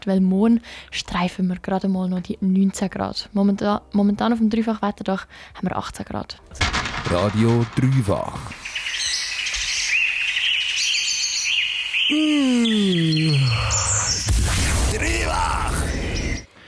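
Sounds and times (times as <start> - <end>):
speech: 0.0 - 8.6, 12.1 - 14.0
birds chirping and singing: 6.7 - 16.5
long low falling groan-like voice: 12.1 - 14.2.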